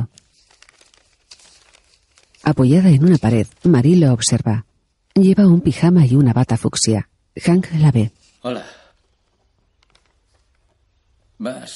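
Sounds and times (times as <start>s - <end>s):
papers rustling and crinkling as they are shuffled and leafed through: 0.0s - 5.2s, 8.0s - 11.4s
speech: 2.4s - 8.8s, 11.4s - 11.7s.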